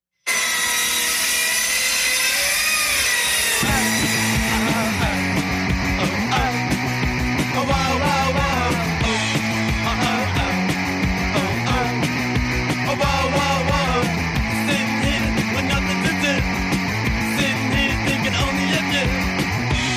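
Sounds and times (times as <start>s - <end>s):
circular saw cutting: 0.2s - 19.9s
music with a rhythmic bass line: 3.3s - 19.9s.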